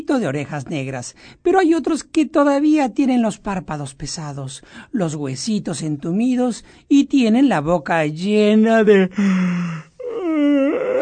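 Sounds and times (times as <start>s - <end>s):
speech: 0.1s - 9.9s
person yawning out loud with drawn-out groan: 9.1s - 11.0s.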